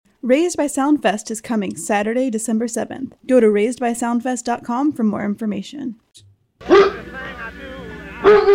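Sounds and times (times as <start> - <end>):
speech: 0.2 - 6.9, 8.2 - 8.5
police-trained Doberman Pinscher barking: 6.6 - 7.1, 8.2 - 8.5.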